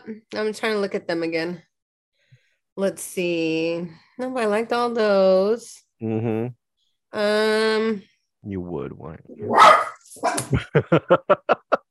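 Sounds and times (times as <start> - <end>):
speech: 0.0 - 1.7, 2.8 - 11.7
dog barking: 9.4 - 10.5
laughter: 10.5 - 11.8.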